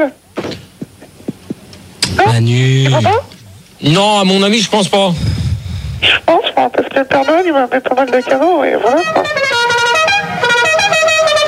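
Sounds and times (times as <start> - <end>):
speech: 0.0 - 0.2, 2.2 - 5.3, 6.0 - 9.5
truck air horn blaring: 7.1 - 11.4.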